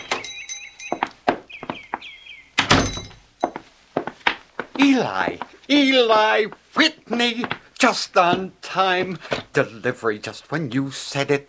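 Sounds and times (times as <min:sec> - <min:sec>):
high chirping tones: 0:00.0 - 0:03.6
door opening with a solid thunk: 0:02.6 - 0:03.2
speech: 0:05.0 - 0:11.4.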